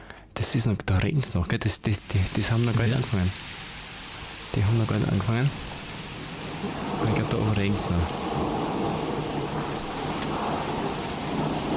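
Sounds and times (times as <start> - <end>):
speech: 0.4 - 3.7, 4.5 - 5.7, 6.6 - 8.6
steady heavy rain: 1.6 - 11.7
low rolling thunder: 2.8 - 11.7.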